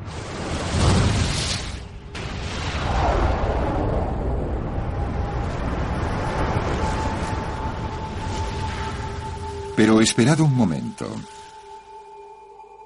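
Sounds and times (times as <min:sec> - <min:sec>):
huge booming explosion sound effect: 0:00.0 - 0:07.6
long dense rumble: 0:00.0 - 0:09.9
speech: 0:10.0 - 0:11.4.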